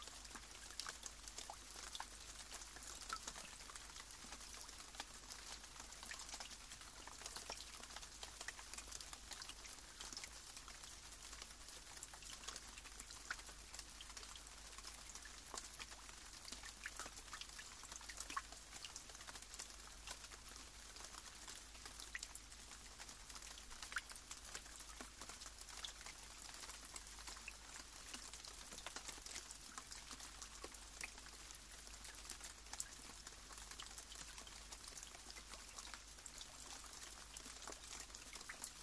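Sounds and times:
rain falling steadily: 0:00.0 - 0:38.8.

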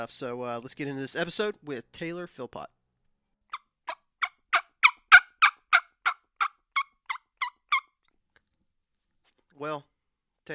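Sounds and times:
speech: 0:00.0 - 0:02.8, 0:09.6 - 0:10.5
diaphragm reed mouth call imitating hen turkey yelps: 0:03.5 - 0:08.0.

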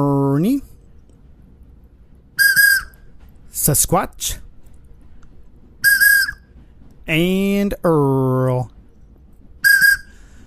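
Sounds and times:
speech: 0:00.0 - 0:00.7, 0:03.6 - 0:04.4, 0:07.1 - 0:08.8
shrill blast of a toy train whistle: 0:02.4 - 0:03.0, 0:05.8 - 0:06.4, 0:09.6 - 0:10.2.

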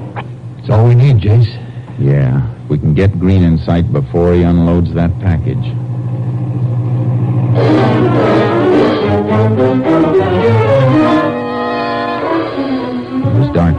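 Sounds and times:
speech: 0:00.7 - 0:05.9, 0:07.6 - 0:08.3
car engine towing a horse trailer rumbling and revving: 0:06.8 - 0:13.7.

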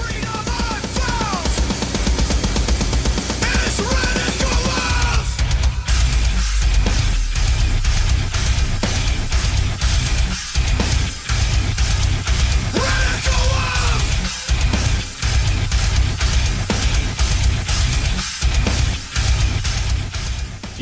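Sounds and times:
loud dense hardcore music with pounding low end and distorted guitars: 0:00.0 - 0:20.7
raw voice shouting vocals over heavy music: 0:03.4 - 0:05.4, 0:12.7 - 0:14.4.

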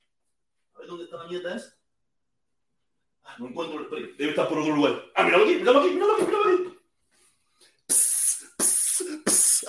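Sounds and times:
speech: 0:00.9 - 0:01.8, 0:03.3 - 0:06.6
aerosol insecticide spray hissing bursts aimed at a cockroach: 0:07.9 - 0:09.6.

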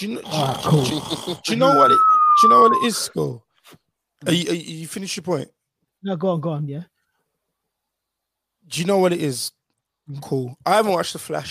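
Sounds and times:
speech: 0:00.0 - 0:03.5, 0:04.2 - 0:06.9, 0:08.7 - 0:11.4
person voicing an exaggerated cartoon-style snore: 0:00.2 - 0:01.6.

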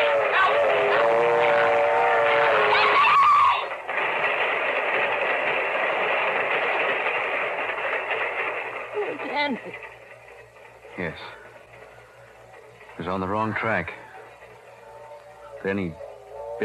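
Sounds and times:
brief sustained horn-like tone: 0:00.0 - 0:03.0
train rushing along a railway track with a loud steady roar: 0:00.0 - 0:16.6
speech: 0:13.2 - 0:14.0, 0:15.6 - 0:16.0.

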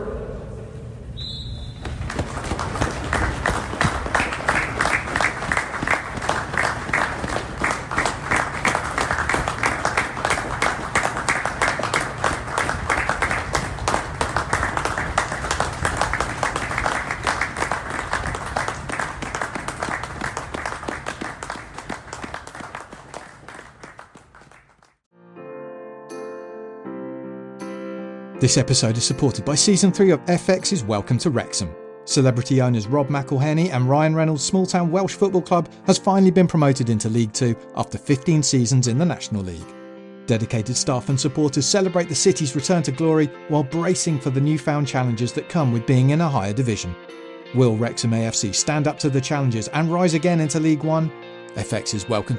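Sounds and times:
large stadium crowd applauding: 0:01.7 - 0:25.0
speech: 0:28.4 - 0:52.3.

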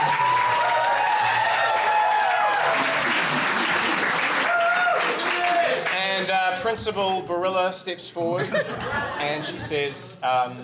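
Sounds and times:
school crowd clapping and cheering: 0:00.0 - 0:07.0
speech: 0:06.7 - 0:10.6
laughter: 0:08.2 - 0:10.2.

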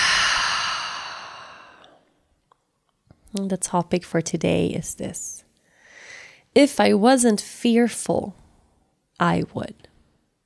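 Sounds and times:
long deep exhale through the mouth during a guided breathing exercise: 0:00.0 - 0:02.1
speech: 0:03.3 - 0:05.4, 0:06.6 - 0:08.4, 0:09.2 - 0:09.9.

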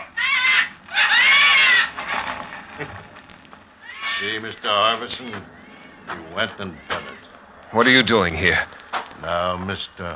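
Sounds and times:
crow-like bird cawing: 0:00.0 - 0:02.8, 0:03.7 - 0:04.6, 0:05.2 - 0:07.5
speech: 0:04.2 - 0:07.0, 0:07.7 - 0:10.1.

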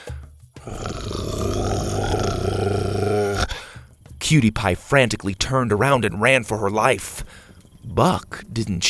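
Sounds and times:
deep rumbling creature growl: 0:00.6 - 0:03.8
speech: 0:04.3 - 0:07.4, 0:08.0 - 0:08.8.

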